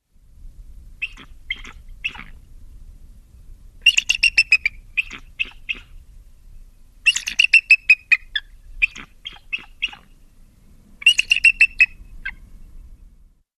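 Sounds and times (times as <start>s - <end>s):
bald eagle calling: 1.0s - 2.4s, 3.8s - 6.0s, 7.0s - 10.2s, 11.0s - 12.4s.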